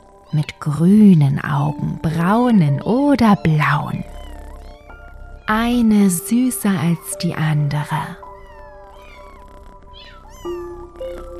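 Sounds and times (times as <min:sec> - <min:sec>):
cats purring against a person's legs: 0:00.0 - 0:11.3
cats meowing: 0:00.1 - 0:00.6, 0:03.3 - 0:05.5, 0:08.2 - 0:11.3
speech: 0:00.3 - 0:04.2, 0:05.5 - 0:08.2.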